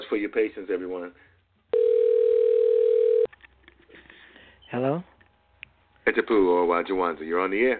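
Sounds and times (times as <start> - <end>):
speech: 0.1 - 1.3, 4.7 - 5.1, 6.1 - 7.7
telephone dial tone while redialing a caller: 1.7 - 3.3.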